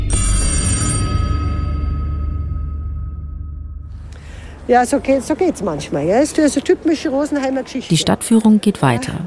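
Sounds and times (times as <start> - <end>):
old-fashioned telephone bell ringing: 0.1 - 2.6
low hum: 1.0 - 4.7
speech: 4.7 - 9.2.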